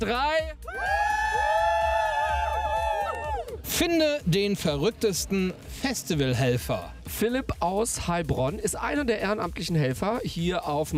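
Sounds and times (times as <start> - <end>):
speech: 0.0 - 0.9, 3.8 - 10.9
festival crowd shouting and cheering on cue: 0.4 - 4.5.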